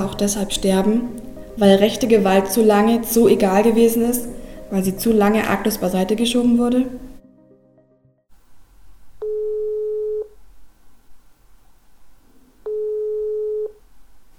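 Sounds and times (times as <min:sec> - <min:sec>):
speech: 0:00.1 - 0:07.0
telephone ringing tone of an outgoing call: 0:09.2 - 0:10.3, 0:12.6 - 0:13.8.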